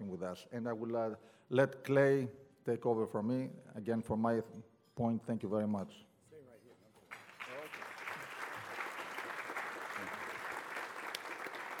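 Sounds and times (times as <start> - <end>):
speech: 0.2 - 6.1
audience applause: 7.1 - 11.7.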